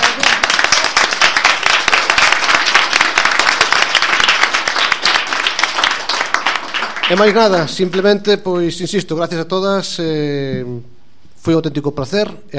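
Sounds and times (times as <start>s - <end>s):
crowd applauding: 0.0s - 8.1s
speech: 7.1s - 12.5s.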